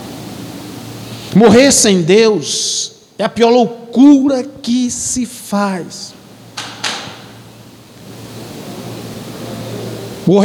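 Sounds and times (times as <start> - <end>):
steady low room hum: 0.0 - 10.4
speech: 1.3 - 6.2, 10.3 - 10.4
wooden chair breaking: 6.6 - 7.4.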